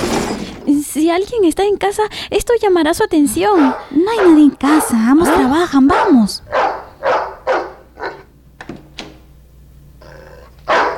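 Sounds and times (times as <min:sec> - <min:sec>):
speech: 0:01.0 - 0:06.7
dog in a house barking sharply: 0:03.4 - 0:08.3, 0:10.7 - 0:10.9
dog whimpering and whining: 0:10.0 - 0:10.9.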